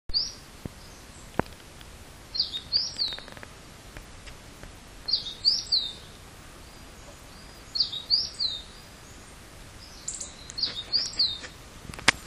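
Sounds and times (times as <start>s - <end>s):
small bird singing short high chirpy phrases: 0.1s - 1.6s, 2.3s - 3.5s, 5.0s - 11.8s
quiet background hiss: 0.1s - 12.2s.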